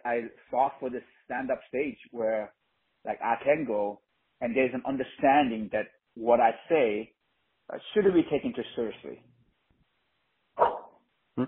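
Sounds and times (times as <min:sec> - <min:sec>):
speech: 0:00.0 - 0:09.3
pet dog barking: 0:10.6 - 0:11.0.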